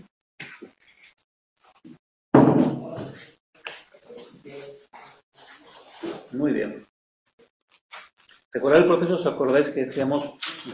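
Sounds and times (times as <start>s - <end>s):
door swinging shut with a thud: 2.4s - 3.2s
speech: 6.3s - 6.9s, 8.5s - 10.7s.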